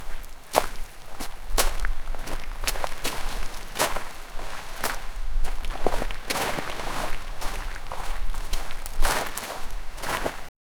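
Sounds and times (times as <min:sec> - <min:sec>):
footsteps on desert dune sand: 0:00.0 - 0:10.5.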